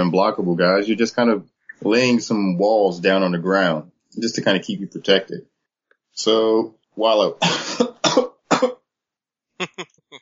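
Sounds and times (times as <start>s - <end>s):
speech: 0.0s - 5.5s, 6.2s - 8.7s, 9.7s - 10.0s
person coughing in harsh noisy bursts: 7.4s - 8.8s.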